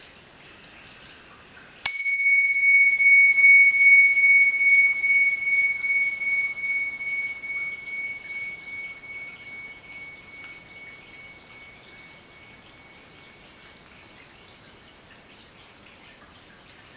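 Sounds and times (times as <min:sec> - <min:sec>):
single bell struck with a clear pure tone: 0:01.9 - 0:13.5.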